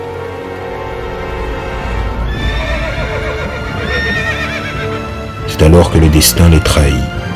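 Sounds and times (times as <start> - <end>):
horses neighing: 1.9 - 5.2
speech: 5.6 - 7.2.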